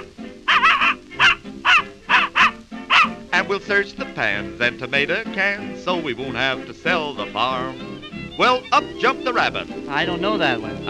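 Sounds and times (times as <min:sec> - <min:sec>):
human voice imitating a little dog's yapping barks: 0:00.0 - 0:03.2
speech: 0:03.4 - 0:07.8, 0:08.4 - 0:10.8.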